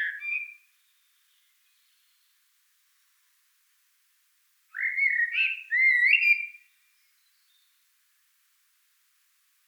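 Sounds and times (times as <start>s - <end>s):
common blackbird Turdus merula song: 0.0s - 2.4s, 4.7s - 7.8s.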